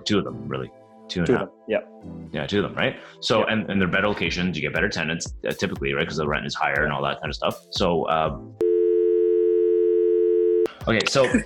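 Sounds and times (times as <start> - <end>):
speech: 0.0 - 8.6, 10.8 - 11.4
telephone busy tone after a call is cut off: 8.6 - 10.7.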